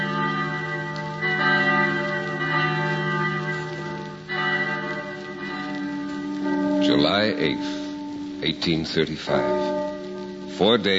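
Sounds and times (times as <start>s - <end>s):
bells ringing: 0.0s - 10.9s
speech: 7.0s - 7.8s, 8.4s - 9.7s, 10.6s - 10.9s.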